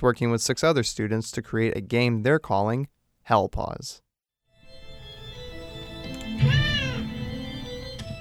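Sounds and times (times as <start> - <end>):
speech: 0.0 - 4.0
cat meowing: 6.4 - 7.2.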